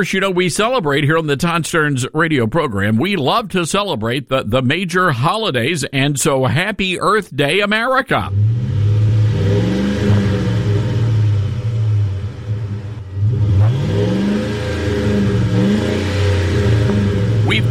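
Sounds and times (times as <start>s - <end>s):
speech: 0.0s - 8.6s
pickup truck engine revving in parking lot: 8.3s - 17.6s.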